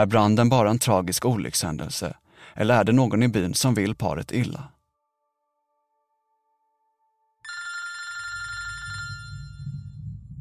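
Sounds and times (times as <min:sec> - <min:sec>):
speech: 0:00.0 - 0:04.8
telephone bell ringing: 0:07.4 - 0:10.0
low rumbling background: 0:08.6 - 0:10.3.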